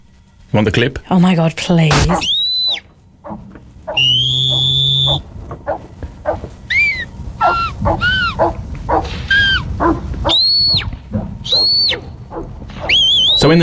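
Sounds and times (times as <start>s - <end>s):
outdoor noise: 0.0s - 13.6s
speech: 0.5s - 2.4s, 4.0s - 6.6s, 13.4s - 13.6s
shepherd's shrill whistle commands to working dogs: 2.0s - 13.6s.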